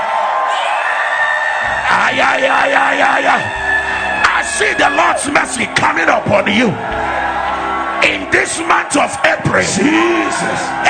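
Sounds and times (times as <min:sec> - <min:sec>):
crowd of worshippers shouting and cheering: 0:00.0 - 0:10.8
speech: 0:04.5 - 0:07.1, 0:08.0 - 0:10.8.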